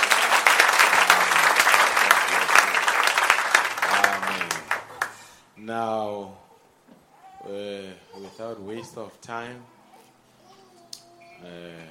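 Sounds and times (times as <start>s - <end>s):
audience applauding: 0.0s - 5.3s
speech: 7.4s - 9.8s, 11.4s - 11.8s.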